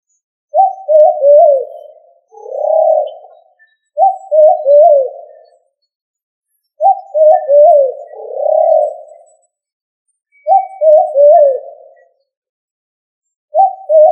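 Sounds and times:
pigeon giving low throaty rolling coos: 0.6 - 5.5, 6.8 - 9.3, 10.5 - 12.1, 13.6 - 14.1.

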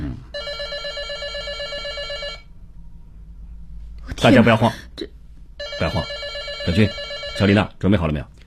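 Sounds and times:
hum: 0.0 - 8.4
telephone ringing: 0.3 - 2.5, 5.6 - 7.6
speech: 4.2 - 5.2, 5.8 - 8.3.

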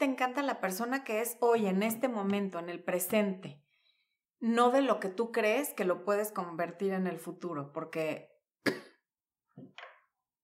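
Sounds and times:
speech: 0.0 - 3.6, 4.4 - 8.8
person coughing: 8.6 - 9.0.

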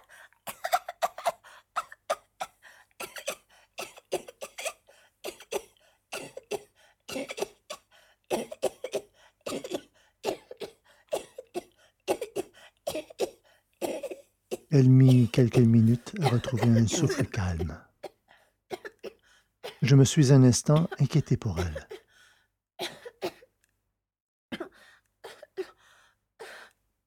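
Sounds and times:
woman's coughing fit: 0.5 - 2.3, 3.0 - 22.1, 22.8 - 23.5, 24.5 - 25.7
woman clearing her throat: 14.7 - 17.8, 20.7 - 21.9
speech: 14.7 - 17.9, 19.9 - 21.9.

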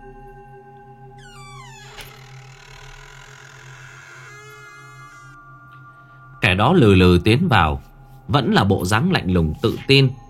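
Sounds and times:
creaking hinges of a slowly opened room door: 1.2 - 5.4
speech: 6.5 - 10.2.

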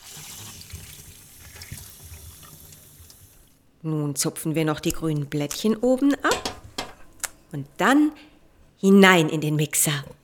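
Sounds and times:
tap water running over strawberries being washed: 0.0 - 3.6
speech: 3.8 - 6.3, 7.5 - 10.2.

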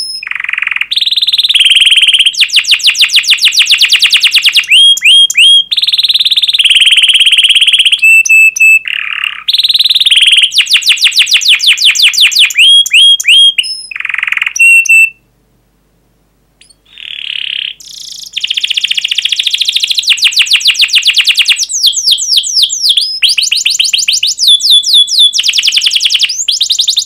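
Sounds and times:
canary song used as a lure for young canaries: 0.0 - 15.4, 16.6 - 27.0.

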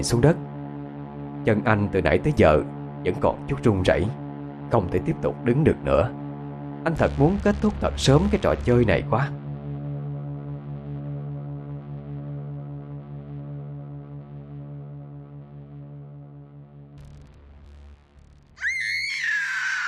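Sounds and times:
speech: 0.0 - 0.5, 1.4 - 6.2, 6.8 - 9.4
low droning tone: 0.4 - 18.6
person screaming during a Halloween-night chase game in a cemetery: 18.6 - 19.8.

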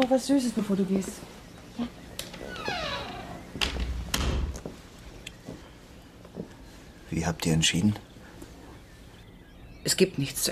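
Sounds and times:
speech: 0.0 - 2.0, 7.2 - 8.1, 9.8 - 10.5
door creaking in a house: 2.2 - 4.7.

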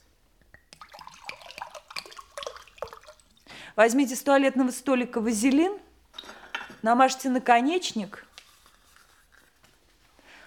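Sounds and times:
water poured from a carafe: 0.8 - 3.6
speech: 3.8 - 5.9, 6.8 - 8.3.

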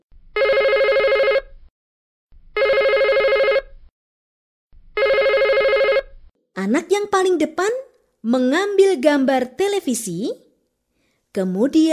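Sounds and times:
telephone ringing with an electronic trill: 0.4 - 1.5, 2.6 - 3.7, 5.0 - 6.1
speech: 6.7 - 10.4, 11.4 - 11.9.

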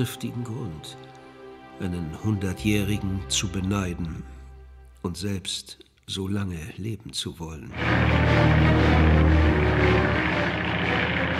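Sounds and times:
speech: 0.0 - 1.2, 1.8 - 4.4, 5.0 - 10.2
propeller airplane engine drone coming in to land: 7.8 - 11.3.

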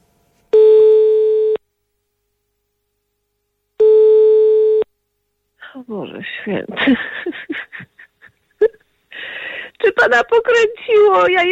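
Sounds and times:
telephone line tone beeps from an outgoing call: 0.5 - 1.6, 3.8 - 4.9
speech: 5.9 - 7.9, 10.0 - 11.5
laughter: 6.6 - 8.8.

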